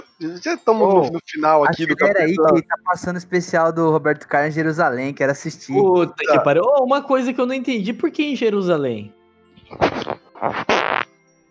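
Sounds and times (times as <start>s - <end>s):
speech: 0.2s - 10.9s
laughter: 1.7s - 2.8s, 6.2s - 6.9s
loud raspy fart sounds into a microphone: 9.7s - 11.1s.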